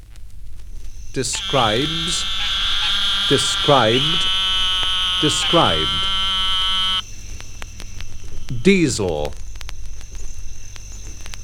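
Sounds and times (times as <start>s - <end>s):
speech: 1.2s - 2.6s, 3.3s - 4.4s, 5.2s - 6.1s, 8.6s - 9.4s
eastern narrow-mouthed toad calling: 1.2s - 7.0s.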